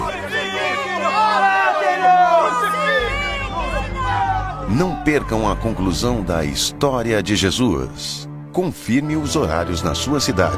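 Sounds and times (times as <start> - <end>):
large crowd clamoring and shouting: 0.0 - 5.6
speech: 4.7 - 10.5.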